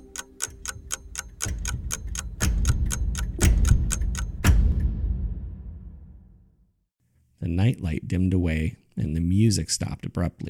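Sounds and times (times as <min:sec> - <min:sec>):
clock ticking: 0:00.0 - 0:04.8
speech: 0:07.5 - 0:10.4.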